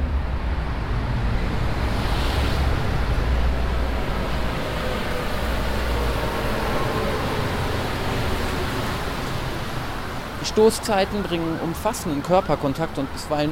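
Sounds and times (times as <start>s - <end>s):
rubber-tyred metro train rumbling underground: 0.0s - 10.5s
speech: 10.6s - 13.4s.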